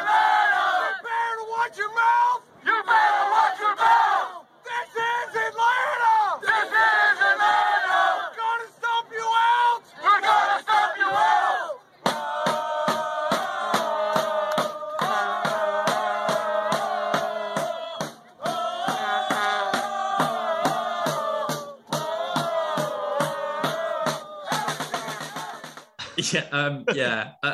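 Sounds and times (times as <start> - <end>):
large crowd of football supporters chanting in a stadium: 0.0 - 2.0, 2.6 - 25.9
steady evenly spaced drumbeats: 12.0 - 26.3
laughter: 26.0 - 27.5
speech: 26.3 - 27.5.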